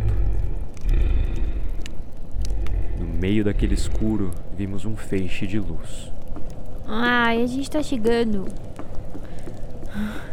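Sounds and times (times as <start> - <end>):
deep creature roar: 0.0 - 4.1
speech: 3.2 - 6.2, 6.9 - 8.7, 10.0 - 10.3.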